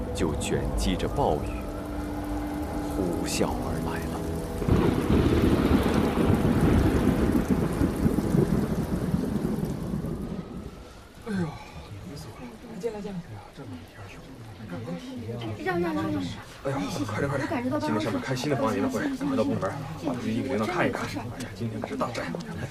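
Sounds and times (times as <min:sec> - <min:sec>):
low thunder rumbling during a typhoon: 0:00.0 - 0:12.6
heavy typhoon rainstorm pouring in Yuhang: 0:00.0 - 0:22.6.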